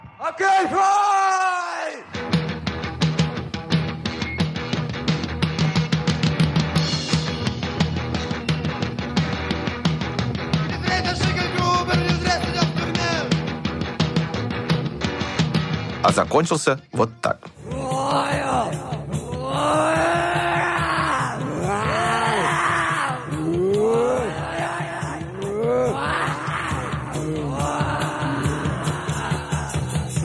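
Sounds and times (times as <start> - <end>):
shouted yell: 0.2 - 2.1, 17.6 - 30.1
raw live punk rock band playing: 2.1 - 16.2, 17.5 - 30.2
speech: 16.2 - 18.4.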